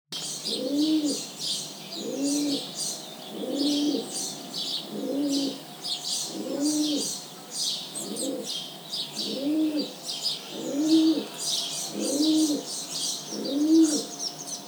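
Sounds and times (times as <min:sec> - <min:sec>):
rock pigeon Columba livia: 0:00.5 - 0:01.3, 0:02.0 - 0:02.7, 0:03.3 - 0:05.6, 0:06.2 - 0:07.2, 0:08.0 - 0:08.6, 0:09.2 - 0:12.7, 0:13.3 - 0:14.1.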